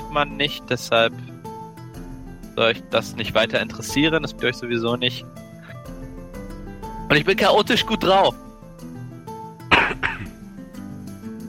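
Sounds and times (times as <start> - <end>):
speech: 0.1 - 1.3, 2.6 - 5.4, 7.1 - 8.4
smoker's harsh rough coughs: 9.7 - 10.4.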